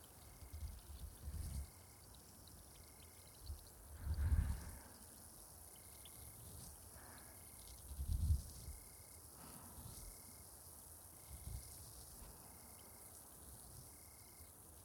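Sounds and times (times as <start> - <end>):
carbonated water fizzing on a cotton swab: 0.1 - 14.0.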